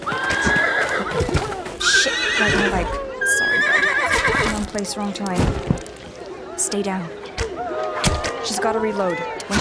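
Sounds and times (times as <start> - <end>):
horse whinnying: 0.1 - 4.6
speech: 2.4 - 3.0, 4.7 - 5.9, 6.7 - 7.3, 8.4 - 9.6.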